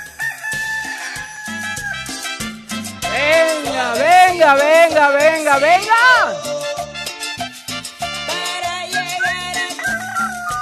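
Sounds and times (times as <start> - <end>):
man imitating a rooster crowing: 0.0 - 2.0, 3.0 - 6.8, 9.7 - 10.5
speech: 3.9 - 6.4.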